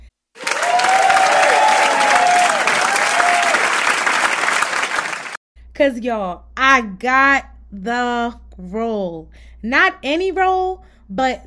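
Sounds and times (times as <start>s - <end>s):
crowd applauding: 0.4s - 5.4s
speech: 5.8s - 11.4s.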